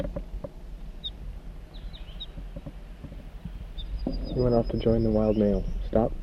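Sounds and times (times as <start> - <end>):
juvenile crossbill calls in flight: 0.0 - 6.2
knocks: 2.3 - 4.4
speech: 4.3 - 6.2.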